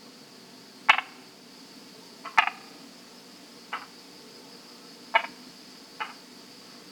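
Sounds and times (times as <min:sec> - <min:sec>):
Brauer's tree frog Polypedates braueri croaking: 0:00.9 - 0:01.2, 0:02.2 - 0:02.7, 0:03.7 - 0:03.9, 0:05.1 - 0:05.4.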